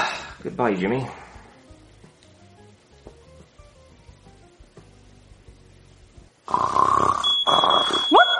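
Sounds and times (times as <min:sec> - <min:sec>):
speech: 0:00.4 - 0:01.2
shrill steady fire alarm tone: 0:07.2 - 0:08.3.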